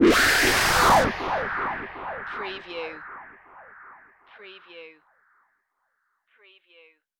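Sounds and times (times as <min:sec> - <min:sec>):
production element distortion effect: 0:00.0 - 0:05.4.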